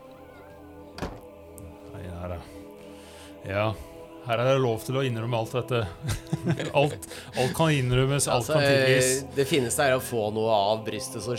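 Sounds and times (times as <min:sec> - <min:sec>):
door shutting thunk: 0:01.0 - 0:01.3
speech: 0:03.4 - 0:11.3
laughter: 0:05.8 - 0:07.9.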